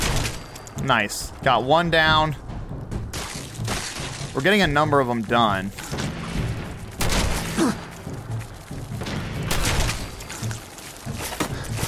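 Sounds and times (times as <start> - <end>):
steady rumbling video game soundscape: 0.0 - 11.8
speech: 0.8 - 2.5, 4.4 - 5.9, 7.6 - 7.8.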